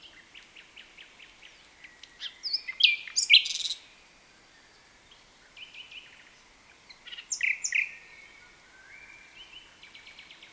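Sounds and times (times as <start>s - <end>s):
Common nightingale Luscinia megarhynchos song of whistled notes and buzzy bursts: 0.0s - 10.5s.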